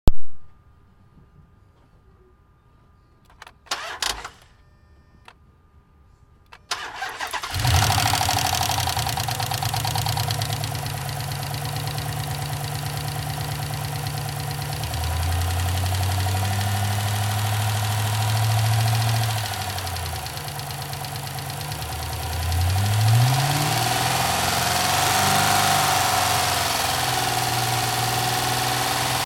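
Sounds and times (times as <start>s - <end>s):
2006 Dodge Charger: 6.6s - 29.2s.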